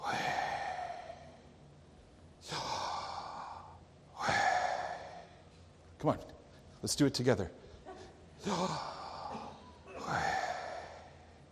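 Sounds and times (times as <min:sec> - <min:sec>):
slow breathing in and out: 0:00.0 - 0:01.7, 0:02.4 - 0:05.8, 0:08.4 - 0:11.4
speech: 0:06.0 - 0:07.6, 0:08.4 - 0:08.9.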